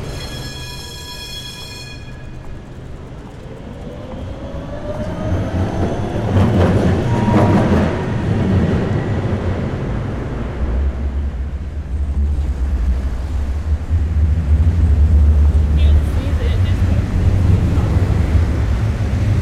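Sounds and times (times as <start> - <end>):
rising and falling squeals: 0.0 - 10.5
deep engine drone: 0.0 - 19.4
high tonal whine: 0.0 - 19.4
heavy traffic of trains, trucks and trams rumbling near a bridge in Berlin: 1.8 - 19.4.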